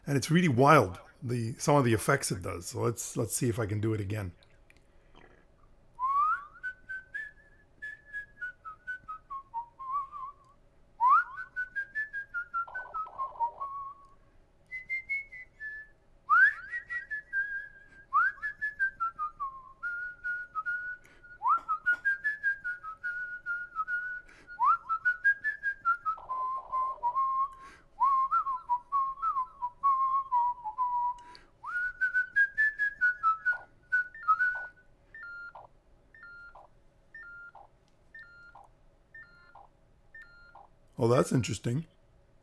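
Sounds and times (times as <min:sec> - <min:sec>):
speech: 0:00.1 - 0:04.4, 0:41.2 - 0:41.9
person whistling a wavering melody with echo: 0:06.0 - 0:14.1, 0:14.7 - 0:36.6.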